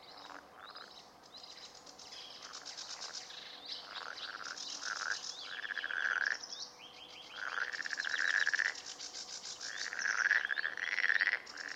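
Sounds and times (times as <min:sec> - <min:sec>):
marsh frog giving pulsed croaks in rattling bursts: 0:02.4 - 0:06.5, 0:07.3 - 0:11.7.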